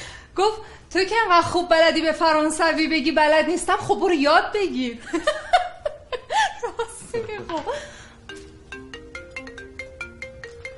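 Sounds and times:
speech: 0.4 - 5.4, 7.2 - 8.0
phone ringing with a bright repeating electronic melody: 7.9 - 10.7.

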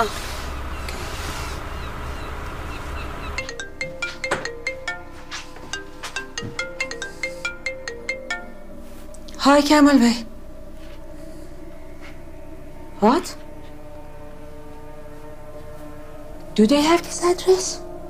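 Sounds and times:
speech: 0.0 - 0.3, 9.5 - 10.3, 13.0 - 13.4, 16.6 - 17.8
phone ringtone of bright electronic notes: 3.3 - 9.1.

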